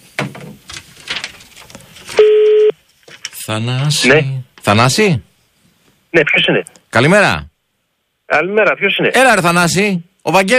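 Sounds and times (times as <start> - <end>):
telephone ringing tone while waiting for answer: 2.2 - 2.7
speech: 3.5 - 5.3, 6.1 - 7.5, 8.3 - 10.5.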